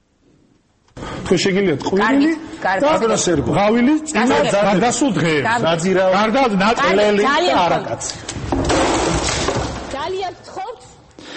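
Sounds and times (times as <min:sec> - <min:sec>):
speech: 0:01.3 - 0:08.4
drinking glass smashed in protest in a television studio: 0:08.6 - 0:10.0.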